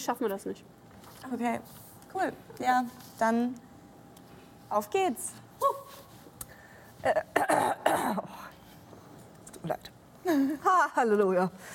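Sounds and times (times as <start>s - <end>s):
speech: 0.0s - 3.7s, 4.7s - 6.0s, 7.0s - 8.5s, 9.6s - 11.7s
person clearing throat: 7.1s - 8.4s.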